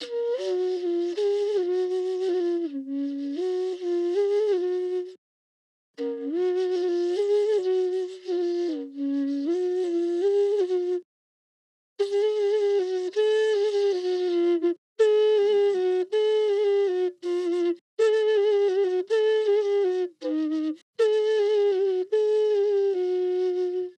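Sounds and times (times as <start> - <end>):
Native bass flute in F: 0.0 - 5.2, 6.0 - 11.0, 12.0 - 23.9.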